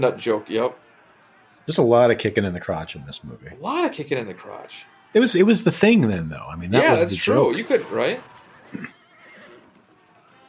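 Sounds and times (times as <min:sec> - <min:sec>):
speech: 0:00.0 - 0:00.8, 0:01.6 - 0:08.9
horse whinnying: 0:07.6 - 0:10.2.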